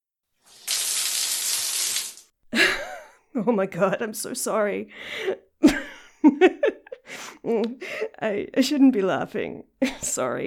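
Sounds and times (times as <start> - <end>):
shower water spraying: 0.4 - 2.3
speech: 3.4 - 6.8, 7.4 - 10.4.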